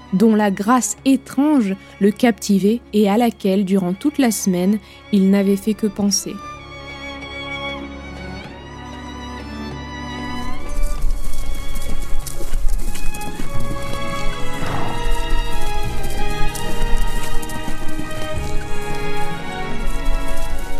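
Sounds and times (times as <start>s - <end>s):
sustained music: 0.0s - 20.7s
speech: 0.1s - 6.5s
horse hooves trotting on a hard road at dawn: 10.2s - 20.7s.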